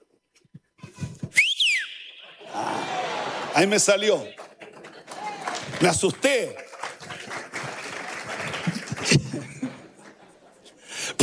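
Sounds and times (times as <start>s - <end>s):
person whistling: 1.0s - 2.4s
laughter: 2.4s - 5.7s, 7.1s - 10.8s
speech: 3.6s - 4.4s, 5.8s - 6.6s.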